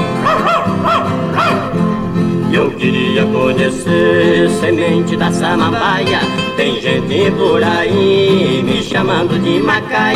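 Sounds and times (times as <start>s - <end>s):
dog barking: 0.2s - 1.8s
speech: 2.5s - 10.1s.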